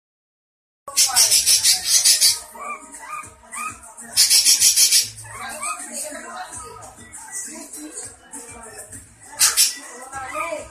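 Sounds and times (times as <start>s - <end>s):
long-tailed shrike soft varied whistles and warbled notes: 0.9s - 2.5s, 3.1s - 5.8s, 9.4s - 9.9s
long-tailed shrike harsh rasping chatter: 0.9s - 10.7s.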